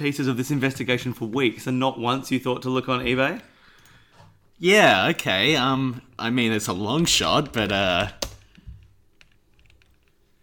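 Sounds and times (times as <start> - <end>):
speech: 0.0 - 3.5, 4.6 - 8.2
typing on a computer keyboard: 7.4 - 10.4.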